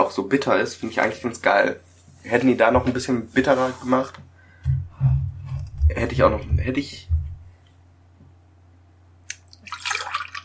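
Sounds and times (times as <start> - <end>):
speech: 0.1 - 4.8, 5.9 - 7.1
steady low hum: 4.7 - 7.6
water pouring into a glass: 9.5 - 10.4.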